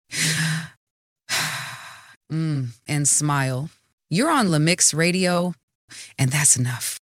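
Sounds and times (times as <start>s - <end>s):
long airy deep breaths: 0.1s - 2.2s
speech: 2.3s - 7.0s.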